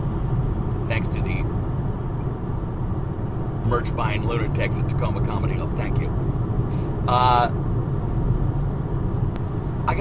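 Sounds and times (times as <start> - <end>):
low road rumble in a car cabin while driving: 0.0 - 9.9
speech: 3.7 - 7.6.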